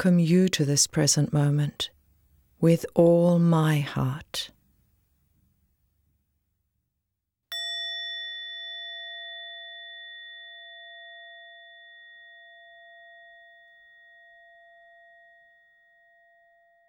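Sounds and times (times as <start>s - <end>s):
speech: 0.0s - 2.0s, 2.6s - 4.6s
single meditation bell ringing: 7.5s - 16.8s.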